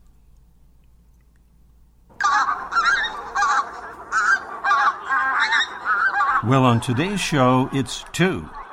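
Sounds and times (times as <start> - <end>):
geese honking: 2.1 - 8.7
speech: 6.4 - 8.6.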